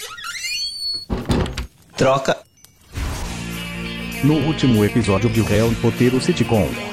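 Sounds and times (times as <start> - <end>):
door creaking: 0.0 - 2.0
door slammed shut: 1.0 - 1.7
speech: 2.0 - 2.5, 4.2 - 6.9.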